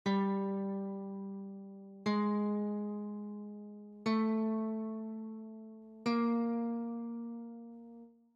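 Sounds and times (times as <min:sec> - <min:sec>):
G string of a children's guitar: 0:00.0 - 0:08.1.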